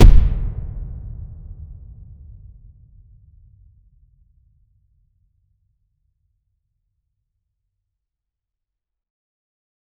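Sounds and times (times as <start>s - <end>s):
heavy solid impact confirmation sound: 0.0s - 1.3s.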